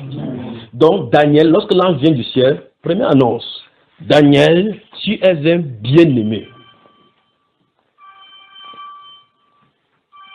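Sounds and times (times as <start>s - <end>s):
low noise: 0.0s - 10.3s
speech: 0.8s - 6.5s
electronic alarm tone going off during a prayer gathering: 6.3s - 10.3s.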